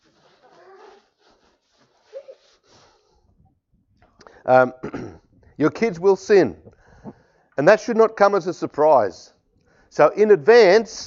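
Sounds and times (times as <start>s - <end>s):
person blowing nose: 0.0s - 3.2s
speech: 4.5s - 6.7s, 7.6s - 11.0s.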